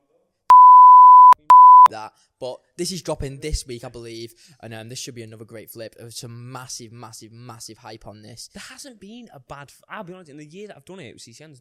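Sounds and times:
steady loud electronic censor bleep at a single pitch: 0.5s - 1.9s
speech: 1.9s - 11.5s.

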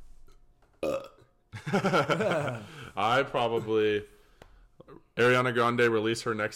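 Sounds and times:
quiet room noise: 0.0s - 6.5s
loud burps: 0.8s - 1.3s
speech: 1.7s - 4.1s, 5.2s - 6.5s.

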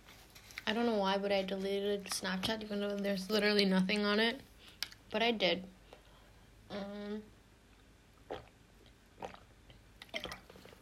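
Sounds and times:
speech: 0.7s - 4.5s, 5.1s - 5.8s, 6.7s - 7.3s
person humming a brief tone: 6.7s - 7.3s
person gulping and swallowing water: 7.7s - 10.8s.

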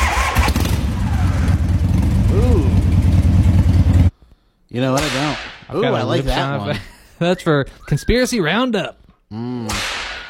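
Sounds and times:
motorcycle engine starting and idling: 0.6s - 4.1s
speech: 4.8s - 9.9s.

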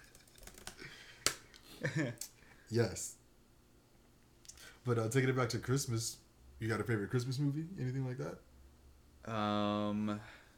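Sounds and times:
typing on a computer keyboard: 0.0s - 0.8s
speech: 1.8s - 3.2s, 4.8s - 8.5s, 9.2s - 10.4s.

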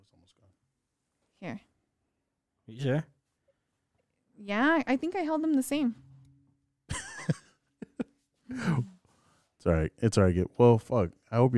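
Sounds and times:
speech: 1.4s - 1.7s, 2.7s - 3.1s, 4.4s - 6.0s, 8.5s - 8.9s, 9.6s - 11.5s
person coughing harshly: 7.1s - 8.9s.

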